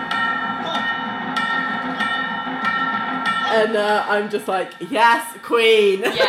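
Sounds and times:
bells tolling: 0.0 - 6.2
speech: 3.6 - 6.2.

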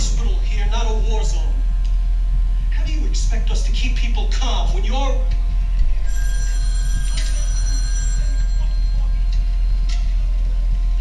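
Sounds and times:
steady low hum: 0.0 - 10.9
telephone ringing in a hospital psych ward: 6.1 - 9.0.

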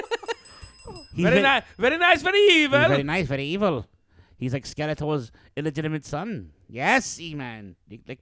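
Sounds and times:
bright metallic bell ringing: 0.0 - 3.1
speech: 1.2 - 8.1.

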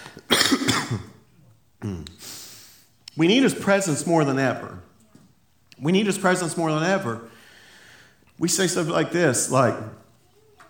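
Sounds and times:
person coughing harshly: 0.2 - 1.2
speech: 3.2 - 4.8, 5.8 - 7.3, 8.4 - 10.0.

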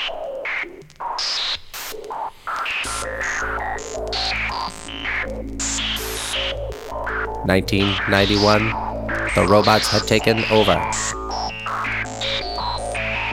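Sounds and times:
white noise synthesizer static bursts: 0.0 - 13.3
chirpy electronic blips: 2.8 - 13.3
speech: 7.4 - 11.0.

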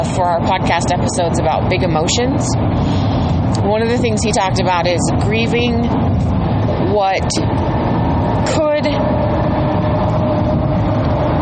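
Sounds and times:
speech: 0.2 - 3.0, 3.6 - 7.6, 8.5 - 9.2
large car engine and road noise: 5.0 - 11.4.

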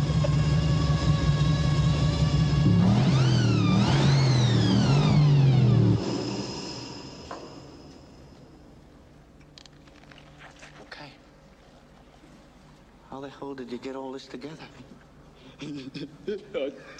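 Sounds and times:
supercharged V8 car engine on nitro idling and revving: 0.0 - 8.1
speech: 13.3 - 16.9.

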